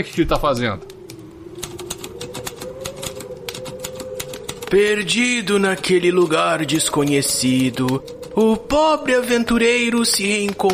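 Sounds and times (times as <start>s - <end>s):
speech: 0.0s - 1.0s, 4.7s - 10.7s
continuous low hum: 0.0s - 10.7s
mechanical typewriter keystrokes: 1.6s - 8.6s, 10.0s - 10.7s.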